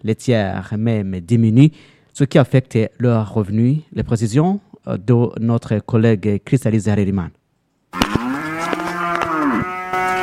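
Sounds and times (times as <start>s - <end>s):
speech: 0.0s - 7.4s
cow mooing on a livestock farm in Okigaramango: 8.0s - 10.2s.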